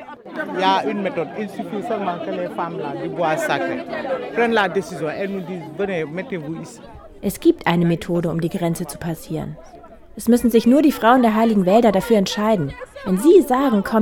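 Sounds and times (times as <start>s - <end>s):
crowd of women arguing loudly at a closed border in southern Senegal and Gambia: 0.0s - 14.0s
laughter: 0.0s - 14.0s
speech: 0.4s - 14.0s.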